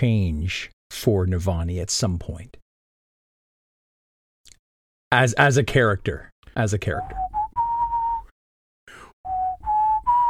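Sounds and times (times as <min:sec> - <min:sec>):
speech: 0:00.0 - 0:02.6, 0:05.1 - 0:07.3
person whistling a short melody: 0:07.0 - 0:08.3, 0:09.0 - 0:10.2.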